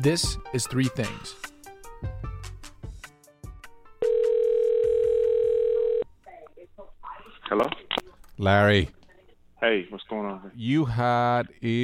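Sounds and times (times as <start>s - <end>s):
speech: 0.0s - 2.1s, 8.4s - 9.0s, 9.6s - 11.8s
electronic telephone ring tone: 4.0s - 6.0s.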